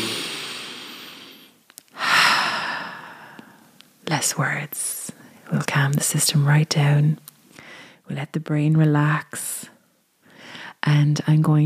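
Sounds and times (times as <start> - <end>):
deep breath: 0.0 - 3.7, 7.6 - 8.0, 10.2 - 10.8
faint small clicks: 1.7 - 2.0
speech: 4.1 - 7.3, 8.1 - 9.7, 10.8 - 11.6.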